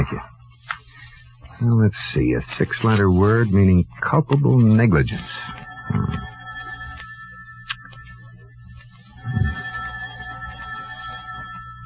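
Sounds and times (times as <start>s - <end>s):
low hum: 0.0s - 11.8s
speech: 1.6s - 6.3s
telephone ringing in a room: 4.4s - 11.8s.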